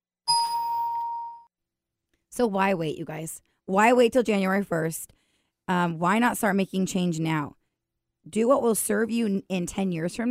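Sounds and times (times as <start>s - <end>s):
bell ding sound effect: 0.3s - 1.5s
speech: 2.4s - 7.6s, 8.2s - 10.2s.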